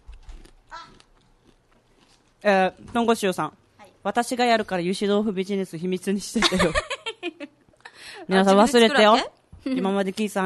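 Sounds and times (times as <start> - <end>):
brown sugar chinsuko biscuit crunching: 0.0 - 2.4
quiet chewing: 0.0 - 2.4
speech: 2.4 - 6.9, 8.3 - 10.4.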